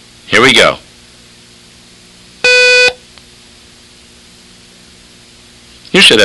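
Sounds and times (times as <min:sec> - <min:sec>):
long electronic beep in a listening exercise: 0:02.4 - 0:03.0.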